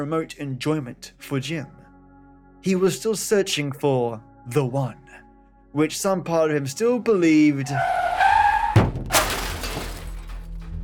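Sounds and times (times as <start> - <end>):
speech: 0.0 - 1.8, 2.6 - 8.0
Jaguar car tires screeching while braking hard on a road: 7.5 - 10.3
car crashing into a figure: 8.6 - 10.8
glass shattering and debris settling: 8.8 - 10.8.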